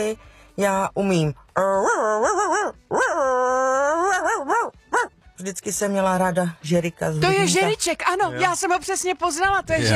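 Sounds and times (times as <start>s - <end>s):
speech: 0.0s - 9.9s
human voice mimicking a dog whining and howling: 1.6s - 5.1s.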